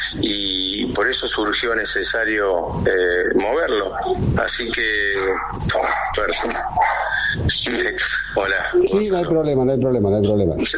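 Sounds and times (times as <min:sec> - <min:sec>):
low hum: 0:00.0 - 0:10.7
speech: 0:00.1 - 0:00.4, 0:01.0 - 0:10.7
dogs barking: 0:05.0 - 0:07.4.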